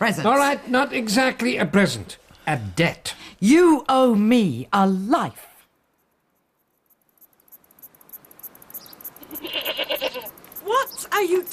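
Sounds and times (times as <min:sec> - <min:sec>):
speech: 0:00.0 - 0:05.5, 0:10.7 - 0:11.5
goat bleating: 0:09.2 - 0:10.4
rapid rhythmic pulsing: 0:10.3 - 0:11.5.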